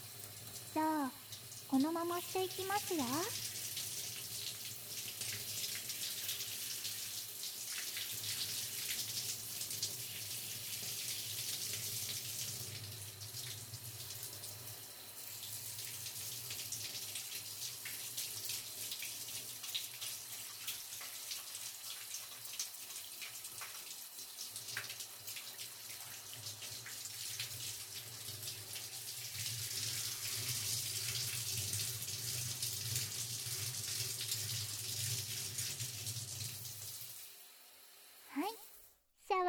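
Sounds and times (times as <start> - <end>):
shower water running: 0.0 - 38.9
speech: 1.7 - 3.4.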